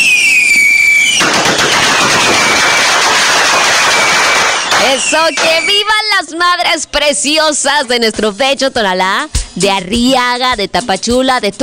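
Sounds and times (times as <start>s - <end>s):
firework rocket whistling upward with a rising shriek: 0.0s - 6.0s
speech: 5.1s - 11.6s.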